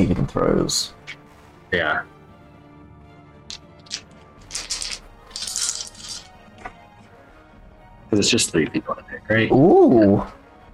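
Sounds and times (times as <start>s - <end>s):
speech: 0.0s - 1.0s, 1.7s - 2.1s, 8.1s - 10.4s
dice rolling on a table: 3.5s - 6.3s.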